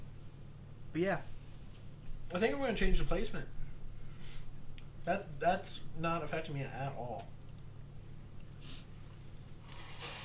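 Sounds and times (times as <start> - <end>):
speech: 0.9 - 1.4, 2.3 - 3.6, 5.0 - 7.4
person blowing nose: 9.6 - 10.2.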